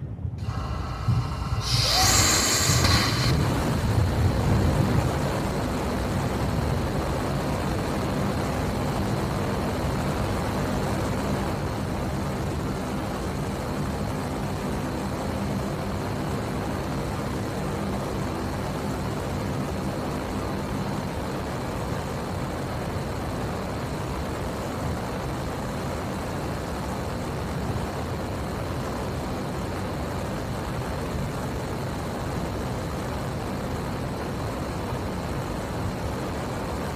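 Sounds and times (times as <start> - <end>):
rocket engine test firing: 0.0 - 36.9.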